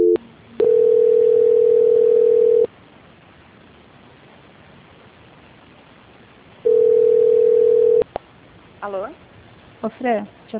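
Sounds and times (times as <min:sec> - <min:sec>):
telephone line tone during a call transfer: 0:00.0 - 0:02.7, 0:06.6 - 0:08.0
speech: 0:09.8 - 0:10.5.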